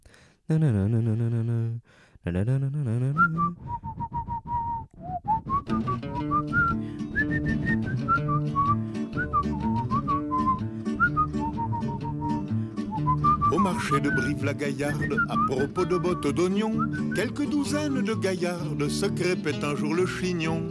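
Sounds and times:
speech: 0.5 - 7.0, 13.6 - 20.6
person whistling a lively melody: 3.0 - 18.7.

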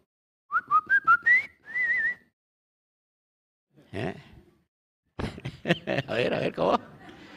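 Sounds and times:
person whistling imitating a caged bird's song: 0.5 - 2.3
speech: 3.9 - 4.2, 5.7 - 6.9
laughter: 5.2 - 7.3.

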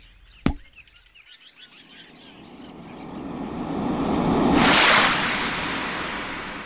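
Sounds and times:
churning water rushing in a well: 2.2 - 6.6.

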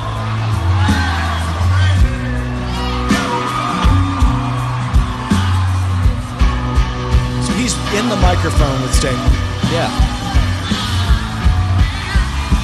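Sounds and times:
concert crowd cheering, whooping and yelling: 0.0 - 12.6
speech: 8.2 - 10.8.

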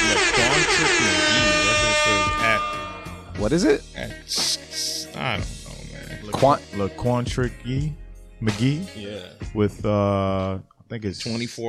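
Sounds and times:
air horn sound effect blaring: 0.0 - 3.4
people talking or shouting: 0.0 - 3.5
speech: 3.4 - 4.6, 5.2 - 5.6, 6.4 - 11.6.

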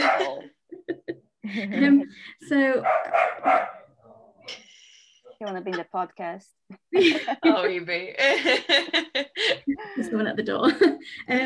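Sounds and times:
pet dog barking at home: 0.0 - 0.4, 2.8 - 4.0
laughter: 0.0 - 2.4, 6.9 - 11.4
speech: 1.5 - 3.7, 5.4 - 11.4.

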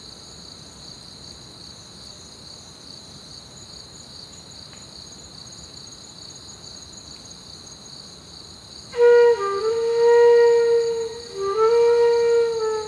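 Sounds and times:
cricket chorus of high rapidly pulsing trills at night in an orchard: 9.0 - 12.8.

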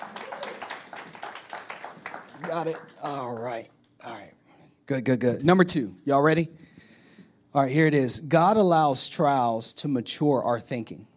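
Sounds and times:
audience clapping hands: 0.0 - 3.7
speech: 2.5 - 6.6, 7.6 - 11.1.

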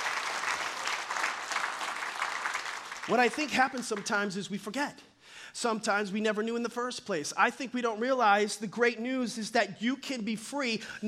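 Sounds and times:
audience clapping: 0.0 - 4.4
speech: 3.1 - 11.0.

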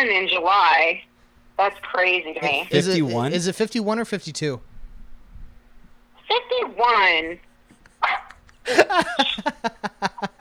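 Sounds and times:
speech: 0.0 - 4.7, 6.3 - 10.4
laughter: 2.5 - 3.4, 7.7 - 10.4
dog barking and yapping: 8.0 - 8.5.

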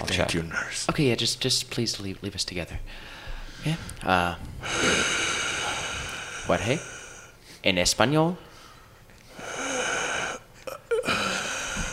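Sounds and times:
speech: 0.1 - 5.2, 6.5 - 6.9, 7.6 - 8.5
wheezing breath with strained whistling inhale: 4.6 - 7.6, 8.5 - 11.9.

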